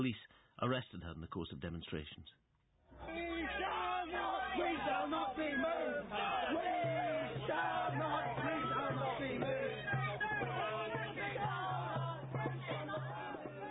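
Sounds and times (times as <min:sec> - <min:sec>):
speech: 0:00.0 - 0:03.3
large protest crowd cheering and shouting: 0:02.9 - 0:13.6.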